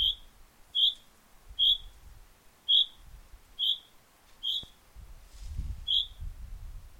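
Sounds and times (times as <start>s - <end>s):
common chaffinch calls Fringilla coelebs: 0.0s - 2.0s, 2.6s - 4.8s, 5.8s - 6.2s.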